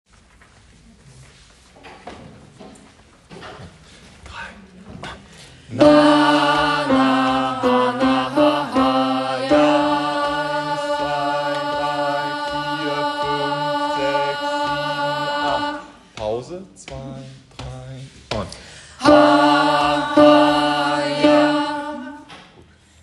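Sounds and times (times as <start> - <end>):
gospel choir singing: 5.5 - 17.4, 18.6 - 22.6.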